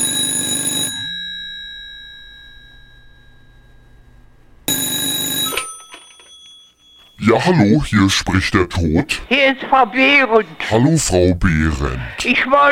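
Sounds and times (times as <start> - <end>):
telephone bell ringing: 0.0 - 3.9, 4.7 - 7.3
speech: 7.3 - 12.7.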